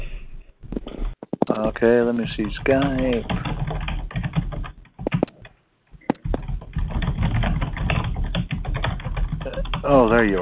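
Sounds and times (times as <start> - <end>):
speech: 1.5 - 3.5, 10.2 - 10.4
rapid typing on a computer keyboard: 2.3 - 10.4.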